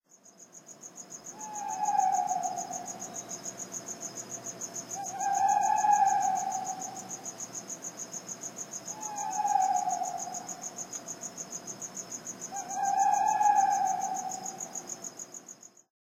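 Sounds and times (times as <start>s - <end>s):
owl: 1.3s - 3.4s, 4.9s - 7.3s, 8.9s - 11.0s, 12.5s - 15.0s.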